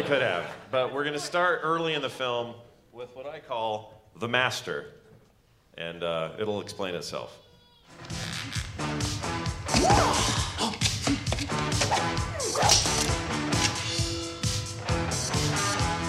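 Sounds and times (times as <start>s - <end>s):
speech: 0.1s - 5.0s, 5.8s - 7.4s
loud dramatic film music: 8.0s - 16.0s
arrows whizzing and thwacking: 9.7s - 13.8s.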